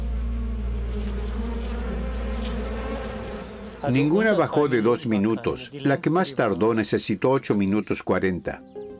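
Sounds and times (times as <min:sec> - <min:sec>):
honeybees buzzing in flight back to their hive: 0:00.0 - 0:06.8
speech: 0:03.8 - 0:08.7.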